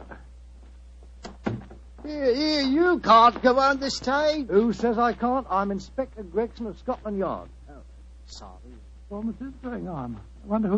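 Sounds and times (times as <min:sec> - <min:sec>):
low steady hum: 0:00.0 - 0:10.7
heavier wooden door thunk with a short rattle: 0:01.3 - 0:01.8
speech: 0:02.1 - 0:07.6, 0:08.3 - 0:10.7.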